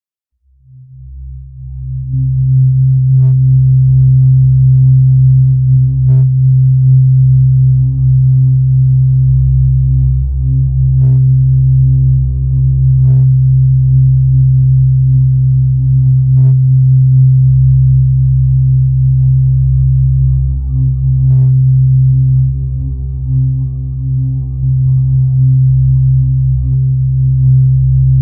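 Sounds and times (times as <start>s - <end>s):
reactor start warm hum: 0.5s - 28.2s.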